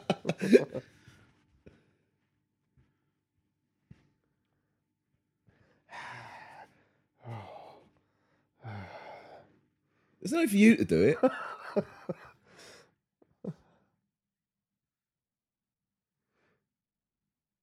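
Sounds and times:
laughter: 0.0s - 0.8s, 11.1s - 12.3s
speech: 0.1s - 1.0s, 10.2s - 12.3s
person breathing heavily imitating a creepy phone caller: 5.4s - 10.2s, 12.2s - 13.8s.

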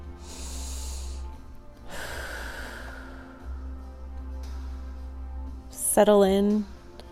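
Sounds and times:
slow deep breathing: 0.2s - 4.0s
speech: 6.0s - 6.7s.

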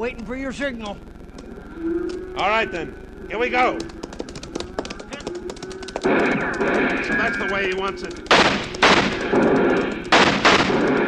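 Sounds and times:
speech: 0.0s - 1.2s, 1.8s - 4.0s, 6.0s - 8.5s, 9.2s - 10.1s
gunfire exchange: 5.9s - 11.0s.

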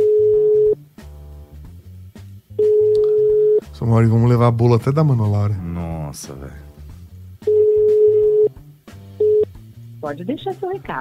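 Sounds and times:
telephone ringing tone on outgoing call to a mobile phone: 0.0s - 0.8s, 2.6s - 3.6s, 7.4s - 8.5s, 9.2s - 9.5s
low music: 0.0s - 11.0s
speech: 3.8s - 6.7s, 10.0s - 11.0s.

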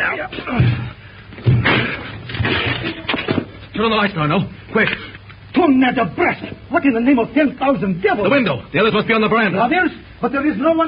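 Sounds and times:
heavy thuds forcing a locked door: 0.5s - 2.0s
splintering crash of a locked door being forced: 1.4s - 3.5s
speech: 3.8s - 10.8s.

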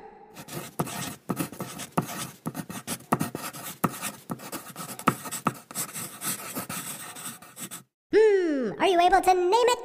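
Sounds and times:
pencil scratching on paper: 0.4s - 7.9s
speech: 9.1s - 9.8s.

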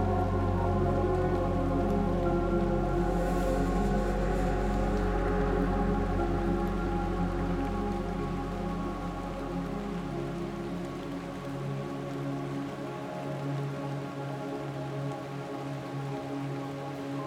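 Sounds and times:
low sustained tonal hum: 0.0s - 11.2s
heavy raindrops falling into a pool: 0.0s - 17.2s.

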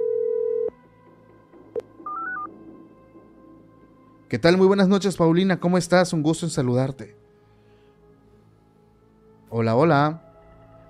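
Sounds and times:
telephone dial tone: 0.0s - 0.7s
speech: 4.3s - 7.2s, 9.5s - 10.2s.

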